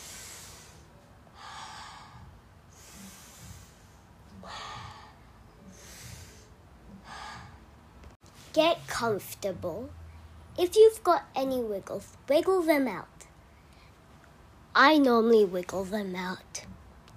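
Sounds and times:
slow deep human breaths: 0.0 - 7.9
speech: 8.6 - 10.0, 10.6 - 13.1, 14.8 - 16.7.

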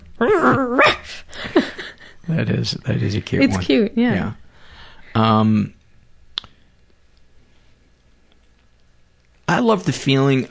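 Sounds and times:
person vocally imitating a dreaming dog growling and barking: 0.2 - 1.2
speech: 2.3 - 4.4, 5.2 - 5.8, 9.6 - 10.4.

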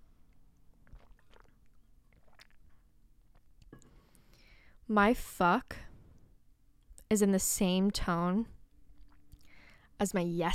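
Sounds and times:
mouth sounds of a small sip from a drink: 0.8 - 4.5
speech: 4.9 - 5.9, 7.1 - 8.6, 10.0 - 10.5.

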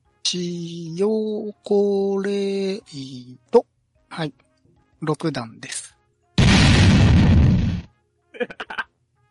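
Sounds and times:
speech: 0.3 - 4.4, 5.0 - 5.8
landmine explosion sound effect: 6.4 - 7.9.

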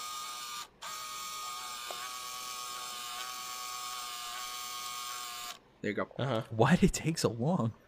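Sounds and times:
Game Boy printer printing with a mechanical whir and buzz: 0.0 - 5.6
speech: 5.8 - 7.8.

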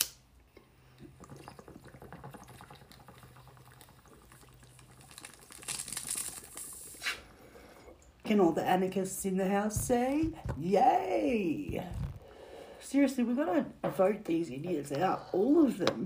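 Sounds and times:
water bubbling in a bong's resonating chamber: 0.5 - 5.7, 11.6 - 12.5
speech: 8.3 - 12.0, 12.9 - 16.0.

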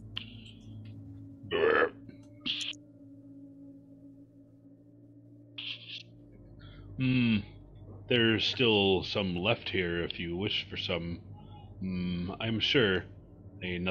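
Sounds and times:
low steady hum: 0.0 - 13.8
voice imitating munching: 1.5 - 2.7
speech: 7.0 - 7.5, 8.1 - 13.8.

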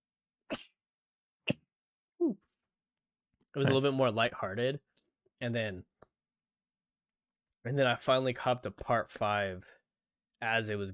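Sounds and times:
sharp sneezes: 0.5 - 0.8, 1.4 - 1.7
speech: 3.6 - 5.9, 7.6 - 9.8, 10.4 - 10.9.

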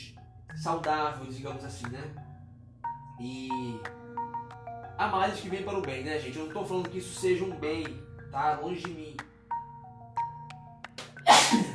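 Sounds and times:
speech: 0.6 - 2.3, 3.2 - 4.0, 5.0 - 9.3
person sneezing: 11.2 - 11.7.

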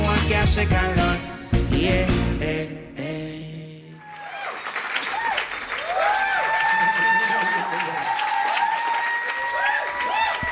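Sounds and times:
speech: 0.1 - 3.1
crowd clapping: 4.0 - 10.5
people cheering: 4.0 - 10.5.

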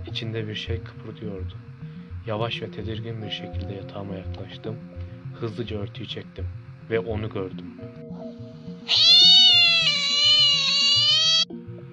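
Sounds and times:
low rhythmic musical backing: 0.0 - 11.9
speech: 0.2 - 8.1, 8.8 - 9.1
cat meowing long and drawn-out: 8.9 - 11.5.

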